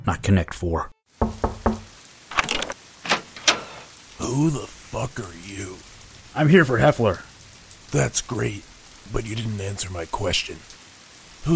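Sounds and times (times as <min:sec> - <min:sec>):
speech: 0:00.0 - 0:01.8, 0:04.3 - 0:07.3, 0:07.9 - 0:10.7
knocking on a door: 0:01.2 - 0:01.9.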